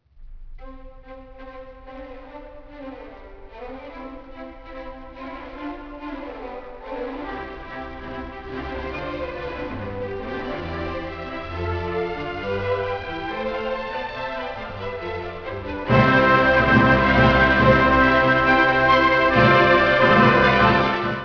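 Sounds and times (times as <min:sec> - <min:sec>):
piano piece: 0:05.2 - 0:21.2.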